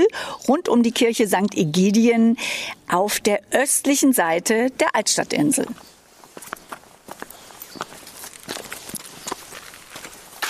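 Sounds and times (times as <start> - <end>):
speech: 0.0 - 6.0
faint outdoor noise: 0.0 - 10.4
crisp footsteps on a hard street surface: 5.7 - 10.4.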